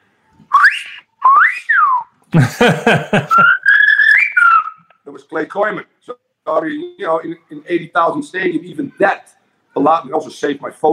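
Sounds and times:
sharp mouth whistles used to call a player: 0.5s - 2.2s, 3.3s - 5.0s
speech: 2.3s - 3.6s, 5.3s - 10.9s
laughter: 2.3s - 3.9s.

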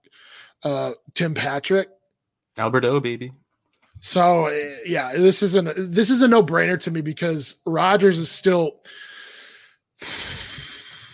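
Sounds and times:
deep breathing: 0.0s - 0.6s, 8.8s - 11.1s
speech: 0.6s - 2.0s, 2.6s - 3.4s, 4.0s - 9.1s, 10.0s - 10.4s.

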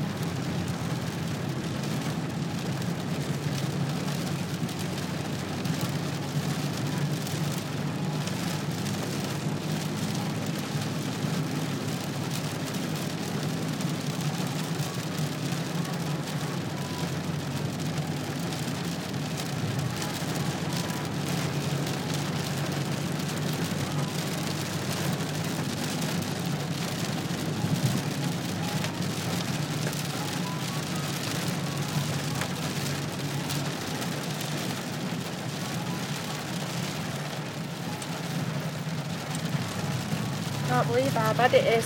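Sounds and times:
heavy rain drumming on a car roof: 0.0s - 41.8s
speech: 40.8s - 41.8s.

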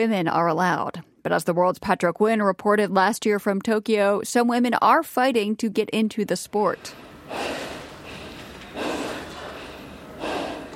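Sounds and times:
speech: 0.0s - 7.8s
heavy labored breathing after a sumo bout: 6.9s - 10.7s.

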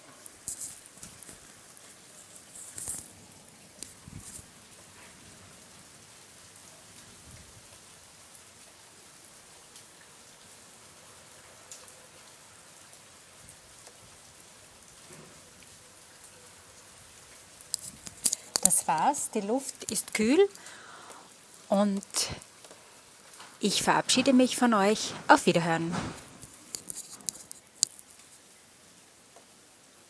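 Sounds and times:
heavy rain falling in Stiftingtal: 0.0s - 30.0s
speech: 18.7s - 20.8s, 21.7s - 22.5s, 23.6s - 26.2s.

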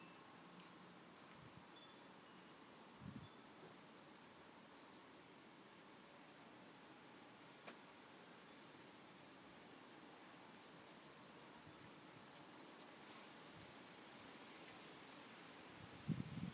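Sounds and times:
rustling garden foliage: 0.0s - 16.5s
wind gusting through a garden: 15.8s - 16.5s.

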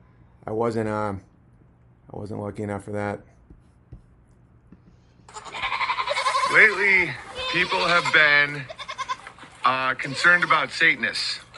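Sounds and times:
speech: 0.4s - 1.3s, 2.1s - 3.3s, 6.5s - 8.8s, 9.7s - 11.4s
goat bleating played back from a recording: 5.3s - 11.5s.

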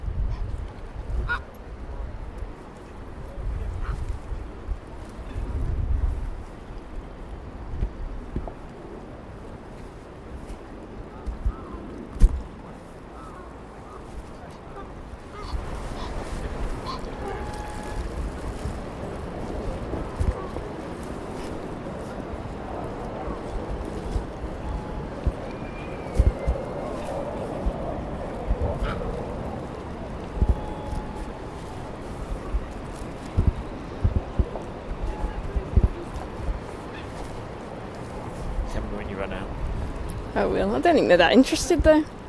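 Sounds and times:
steady wind: 0.0s - 42.2s
geese honking: 14.7s - 18.1s
speech: 40.4s - 42.2s.

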